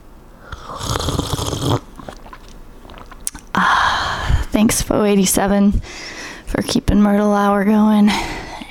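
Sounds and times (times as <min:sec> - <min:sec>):
slurping iced Thai coffee through a straw: 0:00.4 - 0:03.5
speech: 0:04.6 - 0:08.3.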